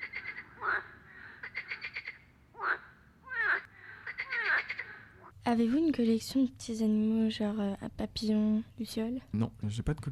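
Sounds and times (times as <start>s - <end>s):
frogs croaking in a pond: 0.0s - 5.4s
speech: 5.5s - 10.0s.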